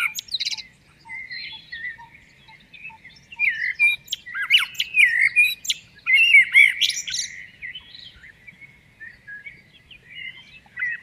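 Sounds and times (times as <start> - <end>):
common blackbird warbling song of fluty slurred phrases: 0.0 - 11.0.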